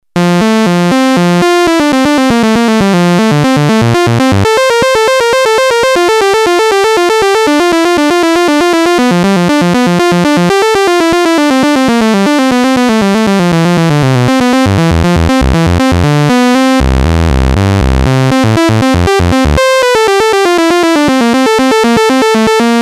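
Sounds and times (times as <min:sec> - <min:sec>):
Moog Minitaur analog monophonic synthesizer sequence: 0:00.2 - 0:16.8, 0:17.6 - 0:22.8.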